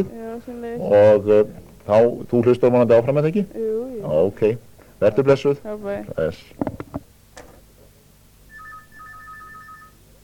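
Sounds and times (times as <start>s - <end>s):
speech: 0.0s - 6.8s
telephone ringing with an electronic two-tone ringtone: 8.5s - 10.1s.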